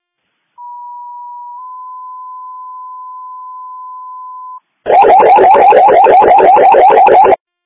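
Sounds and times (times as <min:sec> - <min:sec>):
fire department paging rapidly pulsing warble alert: 0:04.9 - 0:07.4
fire department paging steady electronic tone: 0:04.9 - 0:07.4.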